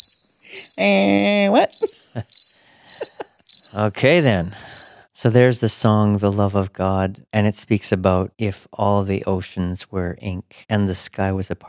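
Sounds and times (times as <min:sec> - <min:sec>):
crickets chirping: 0:00.0 - 0:05.1
speech: 0:00.7 - 0:11.6
laughter: 0:00.8 - 0:02.2, 0:02.9 - 0:03.2, 0:03.8 - 0:11.0.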